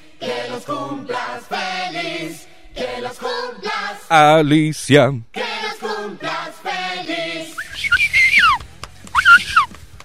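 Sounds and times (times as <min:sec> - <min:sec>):
speech: 0:00.6 - 0:05.4
breathy faltering human whistle attempts: 0:07.6 - 0:09.7.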